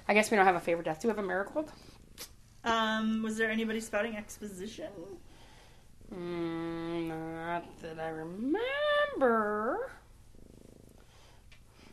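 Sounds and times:
speech: 0.1s - 1.9s, 2.6s - 5.3s, 6.1s - 10.0s
cat purring loudly: 9.4s - 11.3s.

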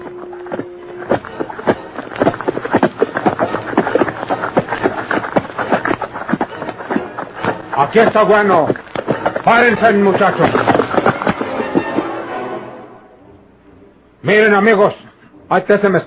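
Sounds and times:
horses' hooves clip-clopping across a creek: 0.0s - 12.4s
speech: 7.8s - 8.8s, 9.5s - 10.7s, 14.3s - 16.0s.

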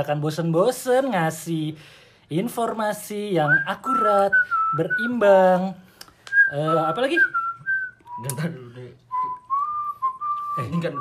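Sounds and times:
speech: 0.0s - 5.9s, 6.5s - 7.4s, 8.2s - 9.0s, 10.6s - 10.9s
person whistling at night: 3.4s - 5.2s, 6.2s - 10.9s.

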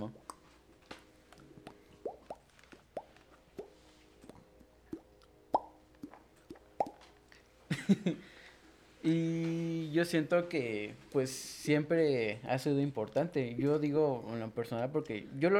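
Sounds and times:
water dripping: 0.0s - 0.6s, 1.3s - 7.4s
laughter: 7.7s - 8.3s
speech: 7.9s - 8.3s, 9.0s - 15.5s.

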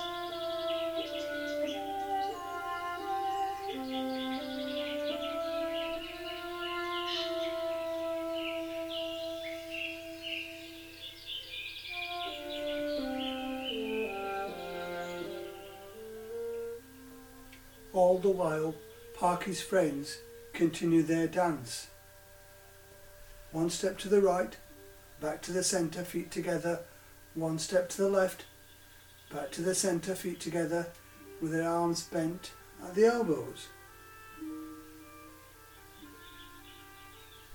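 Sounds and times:
robin chirping and whistling: 0.0s - 16.8s, 28.4s - 29.6s, 35.4s - 37.5s
speech: 18.0s - 21.9s, 23.6s - 24.6s, 25.2s - 28.5s, 29.3s - 33.8s.

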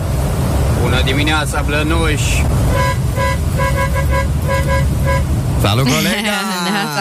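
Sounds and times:
low rumble of traffic: 0.0s - 6.9s
speech: 1.0s - 6.9s
car horns honking: 2.6s - 6.2s
laughter: 5.8s - 6.9s.

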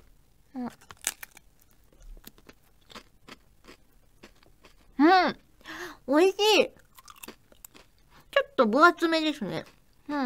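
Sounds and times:
speech: 0.6s - 1.0s, 6.1s - 6.8s, 8.6s - 10.2s
lightly salted potato chips crunching as bitten: 0.6s - 5.5s, 6.7s - 8.0s
chewing of potato chips: 0.7s - 5.6s, 6.8s - 8.2s.

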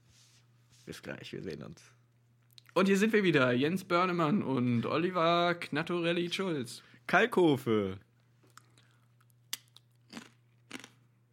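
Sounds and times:
low steady hum: 0.0s - 11.3s
speech: 0.9s - 2.0s, 2.8s - 8.1s
potato chips being chewed while eating: 8.4s - 11.1s.

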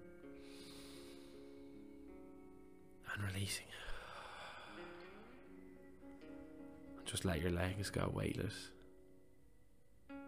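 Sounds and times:
soft sustained musical tones humming: 0.0s - 10.2s
long slow breath inhaled through the nose: 0.4s - 1.9s
speech: 3.1s - 4.0s, 7.1s - 8.8s.

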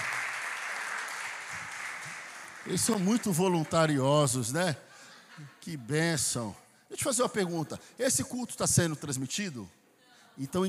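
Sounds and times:
audience applause for volunteers: 0.0s - 4.0s
speech: 2.6s - 9.8s, 10.4s - 10.6s.

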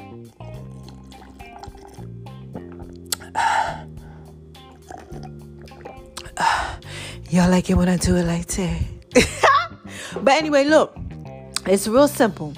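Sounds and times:
sipping and slurping water: 0.0s - 7.0s
speech: 7.3s - 9.4s, 10.2s - 11.0s, 11.7s - 12.5s.

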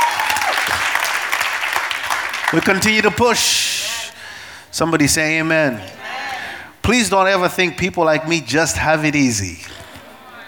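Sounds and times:
audience clapping: 0.0s - 4.2s
speech: 2.5s - 3.9s, 4.7s - 6.0s, 6.9s - 9.8s.

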